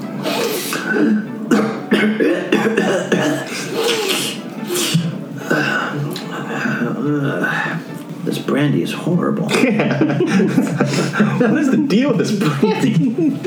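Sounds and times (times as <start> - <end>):
laughter: 0.0 - 13.4
reptile wheezing and sniffling: 0.1 - 1.5, 3.4 - 8.0
speech: 0.9 - 3.2, 8.6 - 13.4.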